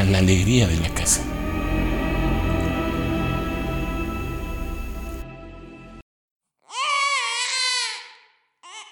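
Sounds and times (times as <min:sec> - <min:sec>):
speech: 0:00.1 - 0:01.3
low droning hum: 0:00.5 - 0:05.5
baby crying: 0:06.6 - 0:08.9.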